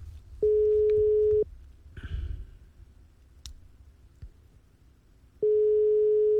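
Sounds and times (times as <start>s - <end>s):
ringback tone on an outgoing telephone call: 0.4s - 1.4s, 5.4s - 6.3s.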